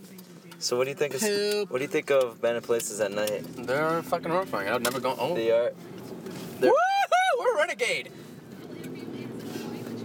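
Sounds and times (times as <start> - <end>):
truck engine rumbling off road: 0.0 - 10.0
truck tires churning over rough ground: 0.0 - 10.0
speech: 0.6 - 6.0, 6.6 - 6.9, 7.7 - 8.2.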